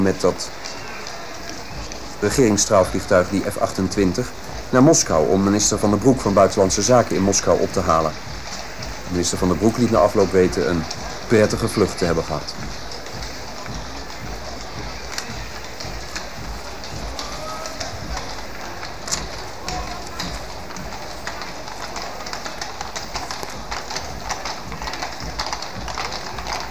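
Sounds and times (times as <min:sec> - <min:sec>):
speech: 0:00.0 - 0:00.7, 0:02.2 - 0:08.3, 0:09.1 - 0:12.7
horse hooves of a horse-drawn coach clattering: 0:00.0 - 0:26.6.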